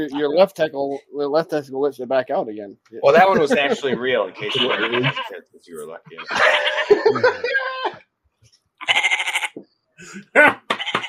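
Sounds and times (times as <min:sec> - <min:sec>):
speech: 0:00.0 - 0:07.7, 0:10.0 - 0:10.6
laughter: 0:03.0 - 0:05.3, 0:06.1 - 0:08.0
goats bleating in chorus: 0:04.0 - 0:05.4, 0:06.1 - 0:08.1, 0:08.8 - 0:09.6, 0:10.7 - 0:11.0.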